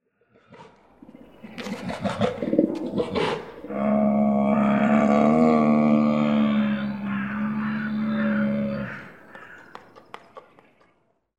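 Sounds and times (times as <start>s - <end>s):
polar bear vocalizing in a zoo: 1.9s - 9.2s.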